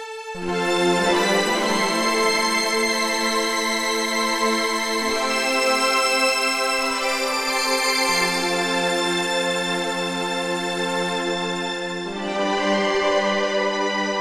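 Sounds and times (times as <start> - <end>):
Yamaha SY77 synthesizer string pads melody: 0.4 - 14.2.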